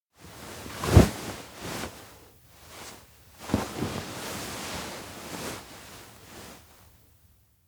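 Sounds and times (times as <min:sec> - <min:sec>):
person lying on futon: 0:00.3 - 0:06.8.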